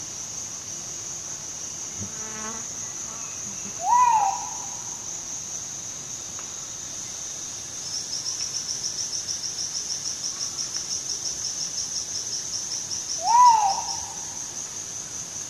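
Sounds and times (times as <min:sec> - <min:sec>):
insects droning and pulsing at high pitch: 0:00.0 - 0:15.4
Crinkle-collared manucode giving slurred whistled calls: 0:03.8 - 0:04.7, 0:13.2 - 0:14.2.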